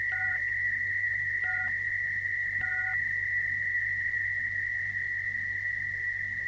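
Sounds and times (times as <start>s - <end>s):
high steady tone: 0.0s - 6.4s
low hum: 0.0s - 6.4s
telephone keypad tones dialing six: 0.1s - 0.4s, 1.4s - 1.7s, 2.6s - 3.0s.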